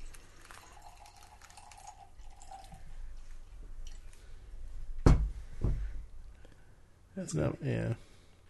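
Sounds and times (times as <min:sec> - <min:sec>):
sour stout aged in oak barrels poured into a glass: 0:00.0 - 0:03.0
low hiss: 0:00.0 - 0:08.4
speech: 0:07.2 - 0:08.1.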